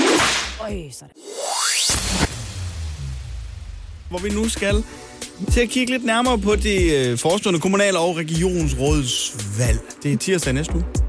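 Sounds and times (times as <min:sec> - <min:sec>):
swooshing sound effect with rising sweep ending in slap-like hit: 0:00.0 - 0:00.6, 0:01.3 - 0:04.4
speech: 0:00.7 - 0:01.3, 0:04.1 - 0:11.0.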